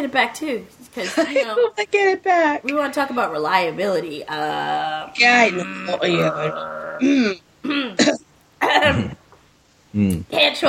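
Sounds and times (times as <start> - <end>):
speech: 0.0 - 9.2, 10.0 - 10.6
person clearing throat: 5.5 - 9.2, 10.0 - 10.2.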